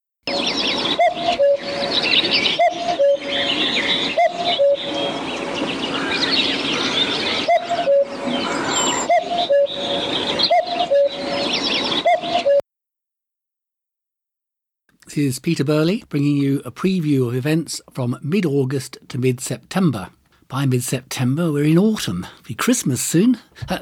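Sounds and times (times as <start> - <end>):
cuckoo calling: 0.3 - 12.6
small birds chirping and trilling: 0.3 - 12.6
speech: 15.2 - 23.8.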